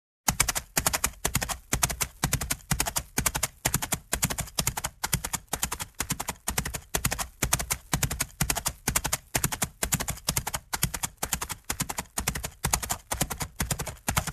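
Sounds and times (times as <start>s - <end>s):
horse gaits on a sand surface: 0.3s - 14.3s.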